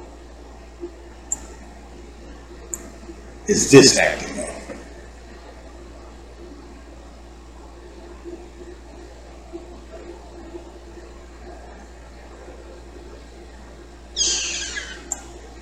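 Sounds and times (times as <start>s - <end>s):
steady low hum: 0.0s - 15.5s
speech: 3.5s - 4.3s
female pet cat short breathy cry: 14.2s - 15.2s.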